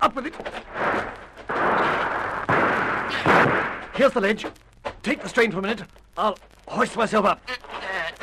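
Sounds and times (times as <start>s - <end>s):
speech: 0.1s - 0.6s, 4.0s - 7.7s
gunfire bursts from the trees below a rocky ledge: 0.7s - 4.0s.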